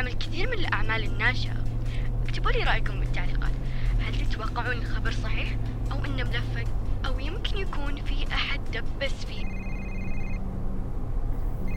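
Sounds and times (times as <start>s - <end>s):
low rumble: 0.0s - 11.7s
speech: 0.4s - 1.7s, 2.3s - 9.6s
electronic phone ringtone signalling an incoming call: 9.4s - 10.5s, 11.5s - 11.7s.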